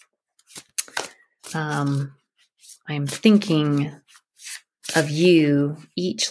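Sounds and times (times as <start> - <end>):
deck of animal spirit guidebook cards being shuffled: 0.4 - 5.3
speech: 1.5 - 4.1, 4.9 - 6.2.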